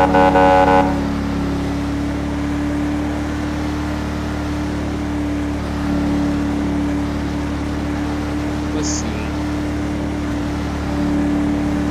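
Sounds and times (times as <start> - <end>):
police cruiser car horn blast in a video game: 0.0 - 1.2
engine drone: 0.0 - 11.8.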